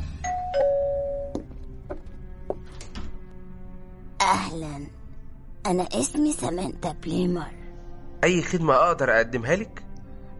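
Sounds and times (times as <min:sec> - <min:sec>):
two-note house doorbell chime: 0:00.2 - 0:01.4
speech: 0:04.5 - 0:05.0, 0:05.6 - 0:07.6, 0:08.2 - 0:09.8.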